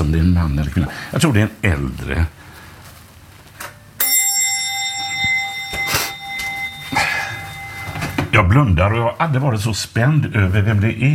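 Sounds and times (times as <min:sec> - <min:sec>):
speech: 0:00.0 - 0:02.5, 0:08.5 - 0:11.1
doorbell with bright metallic chime: 0:04.0 - 0:08.5.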